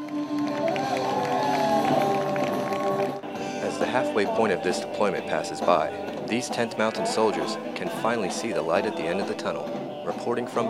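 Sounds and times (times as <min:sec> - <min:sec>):
large concert crowd cheering and shouting: 0:00.0 - 0:04.9
speech: 0:03.9 - 0:10.6.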